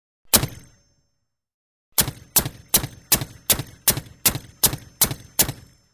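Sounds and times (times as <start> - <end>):
tank machine gun shots: 0.3 - 0.9, 2.0 - 5.9.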